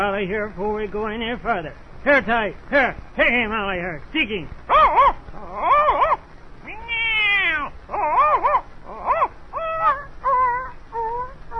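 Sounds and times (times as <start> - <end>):
speech: 0.0 - 5.7
cat and dog fighting: 4.7 - 6.2, 6.8 - 11.5
loud drawn-out yowls and wavering whines: 4.7 - 11.5.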